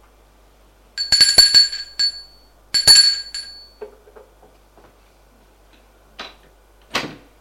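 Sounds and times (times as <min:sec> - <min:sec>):
bright doorbell ringing: 0:01.0 - 0:03.8.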